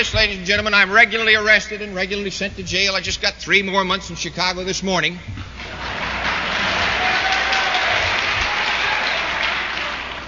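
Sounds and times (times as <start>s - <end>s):
speech: 0.0s - 5.6s
large audience applause: 5.6s - 10.2s.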